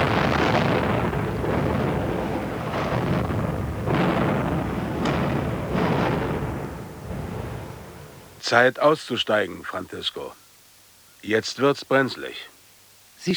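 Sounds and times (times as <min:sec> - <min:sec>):
explosions in leaking oil tanks of a ship: 0:00.0 - 0:08.4
continuous heavy roar: 0:00.0 - 0:08.6
speech: 0:08.5 - 0:10.4, 0:11.2 - 0:12.5.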